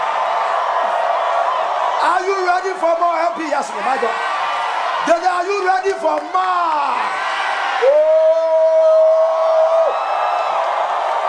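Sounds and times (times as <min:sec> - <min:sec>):
loud crowd shouting and cheering: 0:00.0 - 0:11.2
speech: 0:02.0 - 0:04.3, 0:05.0 - 0:08.3
sustained high whoop: 0:06.9 - 0:11.2.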